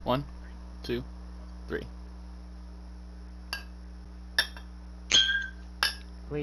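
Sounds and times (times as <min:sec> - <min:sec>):
speech: 0:00.1 - 0:01.1, 0:01.7 - 0:02.0, 0:06.3 - 0:06.4
glasses clinking in a toast: 0:04.4 - 0:06.1.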